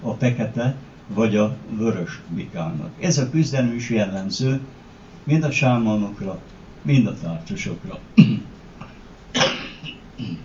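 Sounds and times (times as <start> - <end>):
speech: 0.1 - 8.5
person coughing: 8.2 - 8.5, 9.4 - 10.4
rough throat sounds: 8.2 - 10.4.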